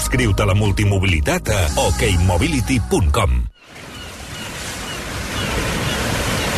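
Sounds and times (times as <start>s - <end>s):
speech: 0.1s - 3.5s
sea waves breaking on the shore with hiss of surf: 3.6s - 6.5s.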